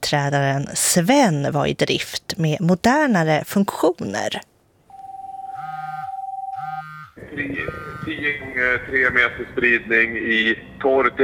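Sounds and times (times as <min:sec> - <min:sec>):
speech: 0:00.0 - 0:04.5, 0:07.4 - 0:11.2
Rakel rescue services radio terminal alarm beeping: 0:04.9 - 0:08.6.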